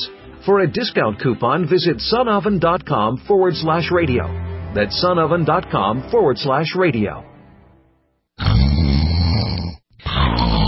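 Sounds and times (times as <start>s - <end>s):
speech: 0.4s - 7.3s
person snoring with loud rasping snores: 8.4s - 10.6s.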